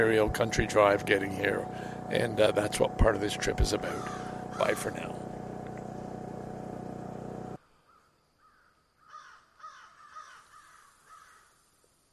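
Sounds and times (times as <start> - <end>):
speech: 0.0 - 5.2
loud vehicle rumble: 0.0 - 7.6
crows cawing in tall pines at Fitzroy Provincial Park, Ontario: 3.9 - 4.8, 7.9 - 11.5.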